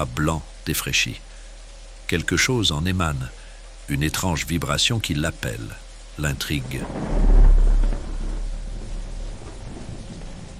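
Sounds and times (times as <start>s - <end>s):
speech: 0.0s - 1.3s, 2.1s - 7.6s
thunder rumbling from a storm outside heard from indoors: 6.4s - 10.5s.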